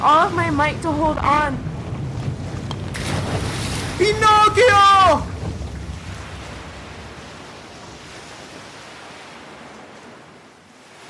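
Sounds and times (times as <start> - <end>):
speech: 0.0 - 1.7, 3.3 - 5.3
high rough sea waves in a storm: 0.0 - 11.0
strong gusting wind in a storm: 0.0 - 11.0
person shouting: 4.0 - 5.3.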